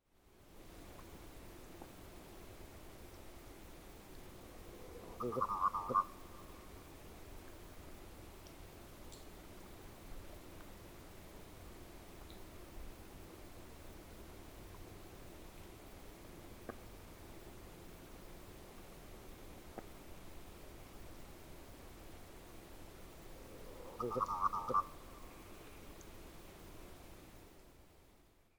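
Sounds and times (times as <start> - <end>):
merganser calling in Clatsop County Oregon: 4.9 - 6.8, 23.4 - 25.8.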